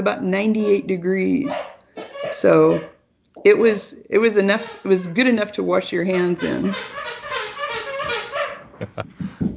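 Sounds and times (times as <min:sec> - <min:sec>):
speech: 0:00.0 - 0:01.7, 0:02.4 - 0:07.2, 0:08.8 - 0:09.5
dog toy squealing as a puppy plays with it: 0:00.6 - 0:03.0, 0:04.5 - 0:05.4, 0:06.1 - 0:08.7.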